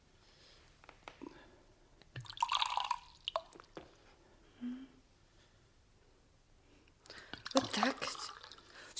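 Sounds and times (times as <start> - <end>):
vodka poured into a glass: 2.2 - 3.7, 7.5 - 8.7.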